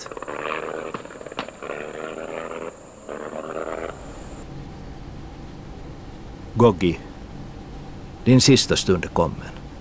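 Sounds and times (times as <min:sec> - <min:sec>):
propeller plane engine sputtering and cutting out: 0:00.0 - 0:04.5
faint steady hum: 0:00.0 - 0:09.7
speech: 0:06.6 - 0:07.1, 0:08.2 - 0:09.6.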